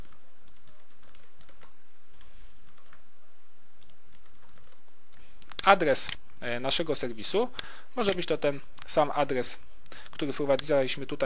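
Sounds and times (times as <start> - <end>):
typing on a computer keyboard: 0.0 - 1.7, 2.6 - 3.0, 3.8 - 4.8
speech: 5.7 - 11.2.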